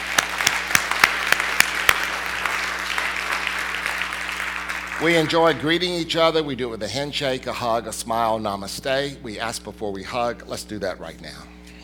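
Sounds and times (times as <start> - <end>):
audience clapping: 0.0 - 5.7
speech: 5.0 - 11.5.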